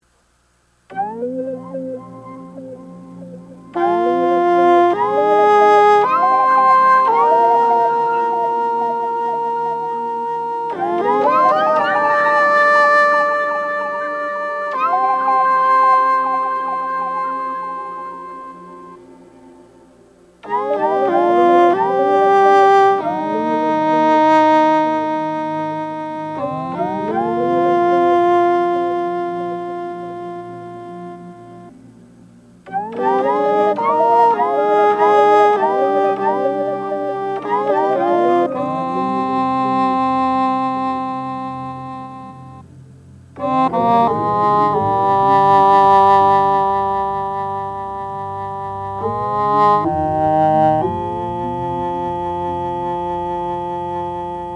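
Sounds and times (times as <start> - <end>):
English horn melody: 0.0 - 54.5.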